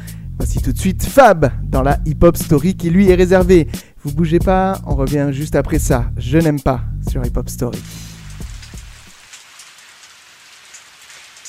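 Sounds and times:
speech: 0:00.5 - 0:08.1
steady rain: 0:07.8 - 0:11.4.

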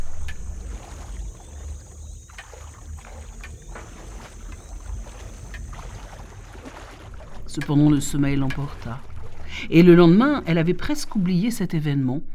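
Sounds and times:
steady low rumble of wind: 0:00.0 - 0:01.7, 0:07.1 - 0:12.3
water lapping and slapping against a hard surface at a washhouse: 0:00.0 - 0:12.2
speech: 0:07.6 - 0:12.3.

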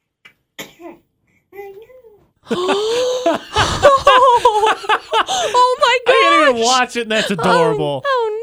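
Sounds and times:
baby of about two or three months sneezing in a played video: 0:00.6 - 0:01.1
speech: 0:02.5 - 0:03.8, 0:04.7 - 0:08.3
adult laughter: 0:02.5 - 0:08.0.

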